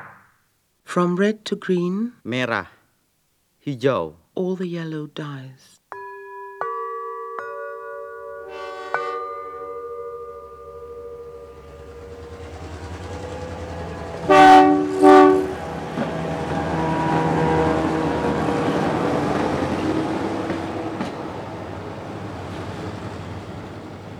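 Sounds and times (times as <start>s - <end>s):
speech: 0.9s - 2.8s, 3.6s - 5.8s
sustained tones: 8.2s - 19.2s
diesel train engine droning on night train: 8.3s - 24.1s
horn-like blasts: 8.5s - 9.8s, 10.4s - 21.6s.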